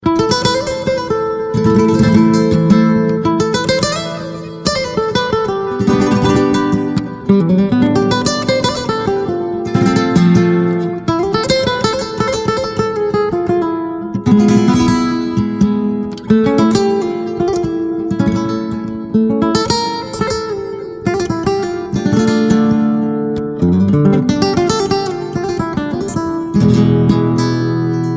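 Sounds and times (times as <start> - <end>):
guitar playing: 0.0 - 28.1.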